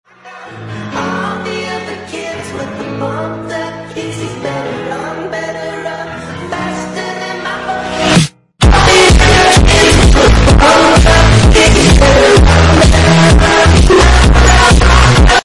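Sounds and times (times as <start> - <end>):
extremely loud distorted noise: 8.6 - 15.4.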